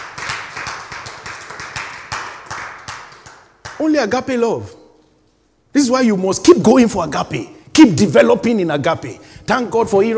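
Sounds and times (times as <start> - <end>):
audience clapping in a steady rhythm: 0.0 - 3.9
speech: 3.8 - 4.8, 5.7 - 10.1.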